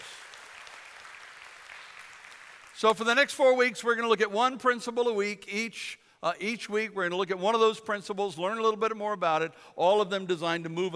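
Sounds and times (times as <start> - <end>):
audience clapping hands in praise: 0.0 - 2.8
speech: 2.8 - 10.9.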